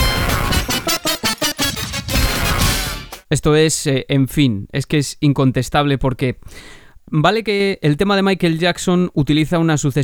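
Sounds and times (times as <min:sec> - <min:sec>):
chiptune-style game melody: 0:00.0 - 0:03.2
pop track: 0:00.0 - 0:03.3
speech: 0:03.3 - 0:10.0.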